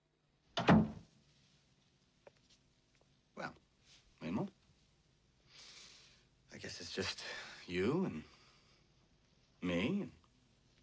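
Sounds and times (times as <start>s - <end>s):
door thudding shut as someone walks out of a room: 0.6s - 1.1s
speech: 7.0s - 8.3s.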